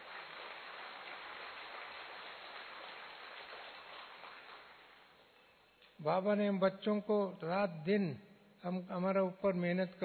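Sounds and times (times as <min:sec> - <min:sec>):
crowd applauding: 0:00.0 - 0:05.2
speech: 0:06.0 - 0:10.0.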